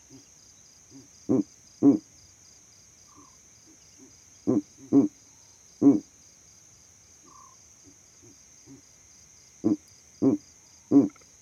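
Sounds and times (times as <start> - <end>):
owl hooting in low throaty notes at night: 0.9 - 2.1, 4.5 - 5.2, 5.8 - 6.1, 9.6 - 11.2
speech: 1.3 - 2.0.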